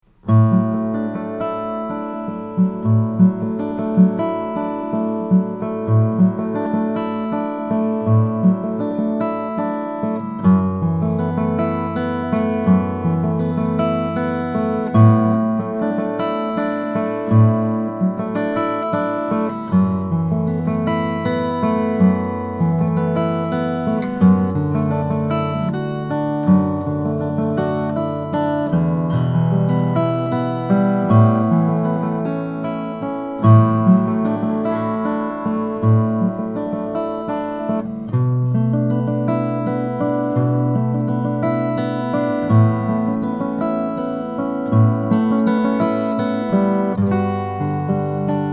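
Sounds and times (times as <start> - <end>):
parlor acoustic guitar with redwood top: 0.0 - 48.5.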